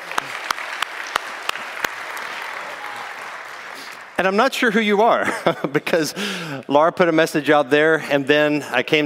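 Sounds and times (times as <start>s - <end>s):
group clapping: 0.0s - 4.4s
speech: 4.2s - 9.0s
laughter: 5.0s - 6.5s.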